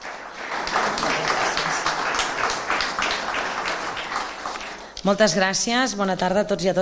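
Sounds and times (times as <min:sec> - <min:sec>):
audience applause: 0:00.0 - 0:05.0
speech: 0:05.0 - 0:06.7.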